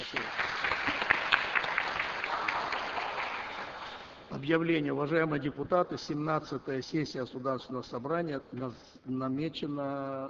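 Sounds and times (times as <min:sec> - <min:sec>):
audience applause from deputies at a regional state assembly session: 0:00.0 - 0:04.2
speech: 0:04.4 - 0:10.2.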